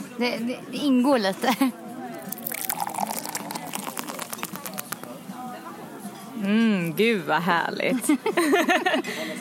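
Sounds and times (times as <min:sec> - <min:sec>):
people talking quietly: 0:00.0 - 0:09.3
speech: 0:00.2 - 0:01.8, 0:06.4 - 0:09.3
gurgling and fizzing beer bubbles: 0:02.2 - 0:05.2
beer poured from a can into a glass: 0:02.2 - 0:05.5
laughter: 0:08.2 - 0:09.3.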